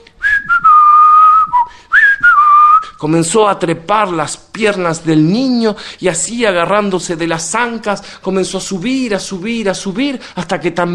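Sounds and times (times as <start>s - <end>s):
person whistling a military march tune: 0.2s - 3.0s
speech: 3.0s - 10.9s.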